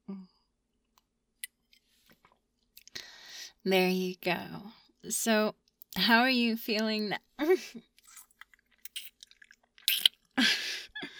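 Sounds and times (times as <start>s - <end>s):
speech: 3.6s - 7.9s
small slurping noises: 8.0s - 10.3s
soft wet mouth clicks: 8.0s - 10.3s
sipping from a drink: 8.0s - 10.4s.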